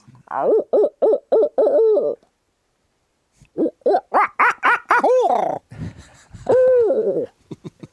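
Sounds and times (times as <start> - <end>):
man imitating a barred owl's hooting with his mouth: 0.2 - 2.2, 3.5 - 5.7, 6.4 - 7.4.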